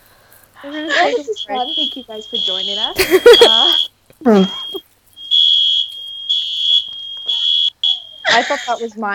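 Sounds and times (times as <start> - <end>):
speech: 0.6 - 4.8, 8.4 - 9.1
fire alarm blaring with a shrill continuous tone: 0.6 - 9.1
laughter: 2.9 - 4.8.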